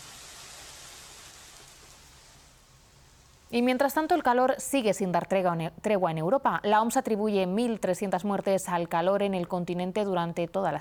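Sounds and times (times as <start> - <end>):
steady dense rain: 0.0 - 3.5
speech: 3.5 - 10.7.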